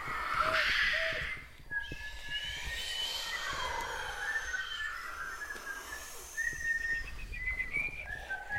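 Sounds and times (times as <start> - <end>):
steady noise: 0.0 - 8.5
person whistling a light wandering little tune: 5.3 - 8.5.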